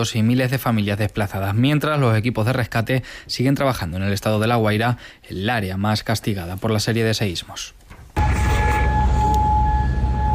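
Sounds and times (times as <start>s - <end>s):
speech: 0.0s - 7.8s
air raid siren in Kuwait after a missile and drone attack: 8.2s - 10.3s.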